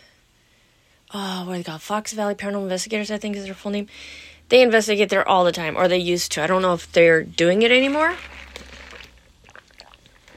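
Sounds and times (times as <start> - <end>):
speech: 1.1 - 8.4
slurping and wet mouth sounds: 7.8 - 10.3
person sipping a coffee drink: 8.2 - 10.3.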